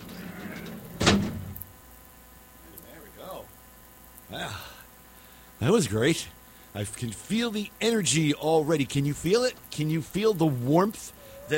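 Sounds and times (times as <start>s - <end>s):
heavy door swinging shut with a deep thud: 0.9s - 1.5s
speech: 5.6s - 11.5s.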